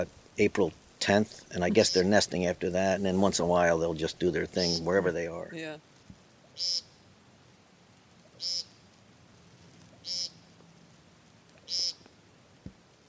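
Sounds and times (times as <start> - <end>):
speech: 0.0 - 5.9, 6.6 - 6.9
male woodcock calling at dusk in mating season: 1.6 - 2.2, 4.5 - 5.2, 6.5 - 7.0, 8.3 - 8.8, 9.9 - 10.6, 11.4 - 12.2.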